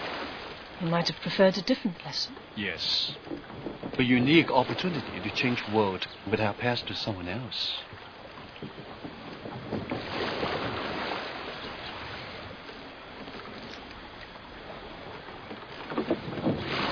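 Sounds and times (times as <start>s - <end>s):
small boat moving across water with splashing and lapping against the hull: 0.0s - 16.9s
speech: 0.8s - 8.0s
wind rushing over the microphone: 2.8s - 5.8s, 8.5s - 12.6s, 15.8s - 16.9s.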